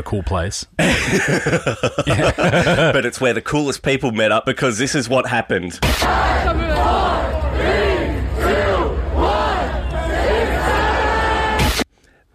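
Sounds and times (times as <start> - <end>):
speech: 0.0 - 7.9
laughter: 0.8 - 3.2
large crowd of adults chanting in unison in Washington Square Park: 5.8 - 11.8.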